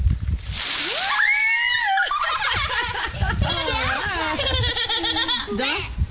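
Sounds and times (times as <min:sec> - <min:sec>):
bucket of ice water splashing over a person's head: 0:00.3 - 0:03.7
laughter: 0:01.9 - 0:05.6.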